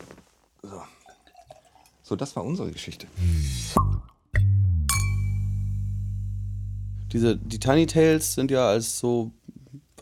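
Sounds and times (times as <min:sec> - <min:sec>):
low steady background: 0:00.5 - 0:10.0
glasses clinking: 0:01.0 - 0:01.9
speech: 0:02.1 - 0:04.0, 0:07.1 - 0:09.4.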